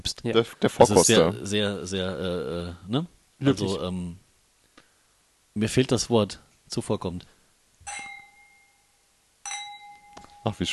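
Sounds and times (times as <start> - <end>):
speech: 0.1 - 4.2, 5.6 - 7.3, 10.4 - 10.7
wine glasses clinking in a toast: 0.9 - 1.3, 7.9 - 8.8, 9.5 - 10.7.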